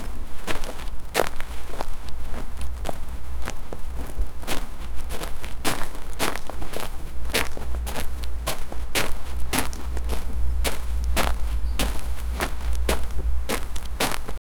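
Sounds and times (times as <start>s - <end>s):
footsteps in the sand on a beach: 0.0s - 14.4s.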